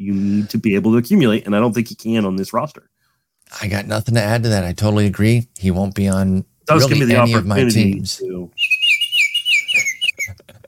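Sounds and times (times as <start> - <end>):
speech: 0.1 - 2.9, 3.5 - 8.8
bird chirping: 8.5 - 10.5.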